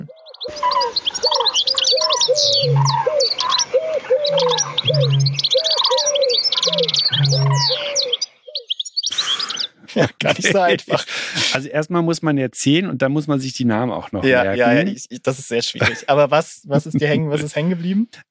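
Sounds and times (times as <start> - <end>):
dense chorus of bird song with chirps and whistles: 0.0 - 9.8
speech: 0.5 - 1.8, 2.4 - 3.3, 10.0 - 18.2
Eurasian bittern low hollow booming notes: 4.8 - 5.6, 7.1 - 7.7
laughter: 9.1 - 11.7, 15.6 - 17.8.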